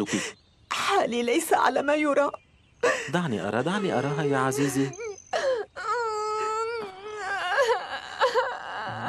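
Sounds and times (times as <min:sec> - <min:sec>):
speech: 0:00.0 - 0:05.0
young boy crying and whimpering: 0:03.6 - 0:09.0.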